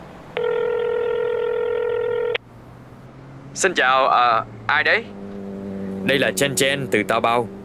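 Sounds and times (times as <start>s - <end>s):
steady electronic telephone tone: 0.4s - 2.4s
speech: 3.6s - 5.2s, 6.0s - 7.6s.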